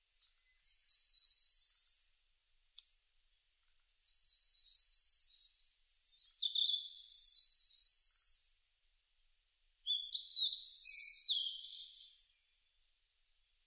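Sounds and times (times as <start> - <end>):
Eastern crowned warbler buzzy rising song: 0.2 - 2.1, 4.0 - 8.5, 9.8 - 12.8, 13.4 - 13.6.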